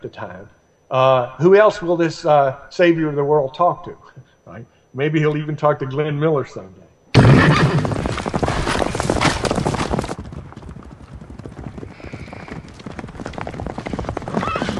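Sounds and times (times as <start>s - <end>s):
speech: 0.0s - 6.8s
horse whinnying: 7.2s - 9.5s, 14.2s - 14.7s
horses clip-clopping as riders head back through a valley: 7.2s - 14.7s.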